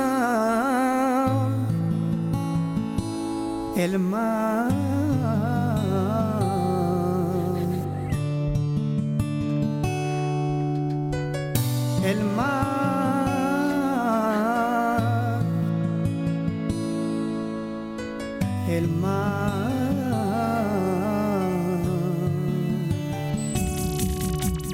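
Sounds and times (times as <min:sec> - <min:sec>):
voice singing a ballad: 0:00.0 - 0:02.7, 0:03.6 - 0:08.4, 0:11.9 - 0:16.0, 0:18.5 - 0:23.6
speech: 0:03.8 - 0:04.8
sustained instrumental accompaniment: 0:05.6 - 0:24.7.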